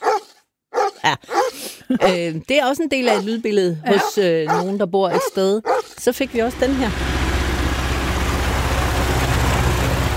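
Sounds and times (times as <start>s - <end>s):
speech: 1.0s - 7.1s
tractor engine running in South Funen Denmark: 3.9s - 10.1s.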